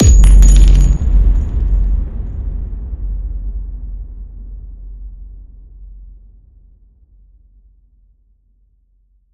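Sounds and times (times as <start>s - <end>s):
direct hit shells booming: 0.0s - 2.1s.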